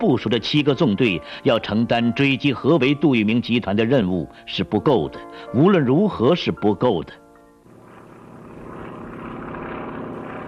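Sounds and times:
speech: 0.0s - 7.2s
propeller airplane flying in: 7.3s - 10.4s.

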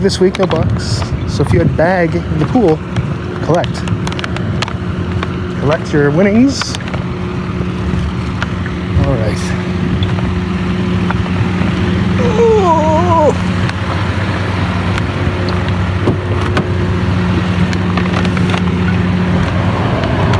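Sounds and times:
speech: 0.0s - 4.0s, 5.6s - 6.9s, 9.2s - 9.7s
car air conditioning humming heard from outside the vehicle: 4.9s - 20.3s.

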